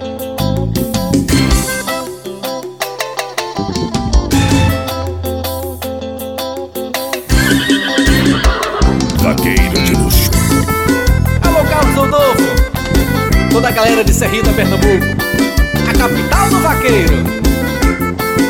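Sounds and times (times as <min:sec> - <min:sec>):
loud busy music with a steady bass line: 0:00.0 - 0:18.4
horse whinnying with a wavering shaky pitch: 0:07.3 - 0:11.1
speech: 0:13.8 - 0:17.4.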